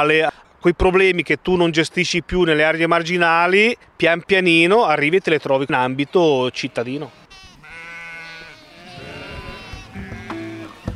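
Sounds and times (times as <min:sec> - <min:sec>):
speech: 0:00.0 - 0:07.2
faint noise: 0:00.0 - 0:10.9
sheep bleating: 0:05.6 - 0:10.9.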